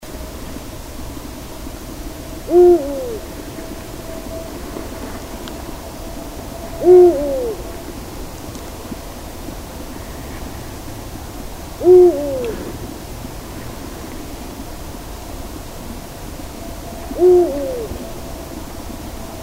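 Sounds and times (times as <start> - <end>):
eagle owl calling in Landshut: 2.3 - 8.0, 11.8 - 13.0, 16.2 - 18.9.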